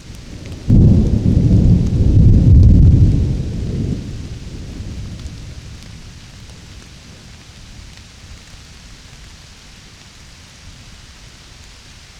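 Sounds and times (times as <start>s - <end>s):
faint steady hiss of light rain in a hillside forest: 0.0s - 12.1s
deep roll of summer thunder in a hillside forest: 0.2s - 6.8s.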